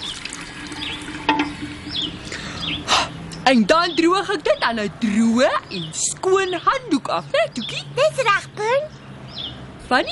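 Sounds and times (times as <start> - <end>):
soapy hands rinsed under running water: 0.0 - 2.4
speech: 3.5 - 9.0, 9.9 - 10.0.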